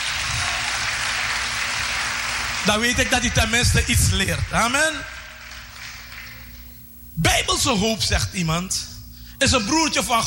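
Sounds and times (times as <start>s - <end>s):
crowd applauding in a church: 0.0s - 6.7s
faint low hum: 0.0s - 10.2s
speech: 2.6s - 5.2s, 7.2s - 10.2s.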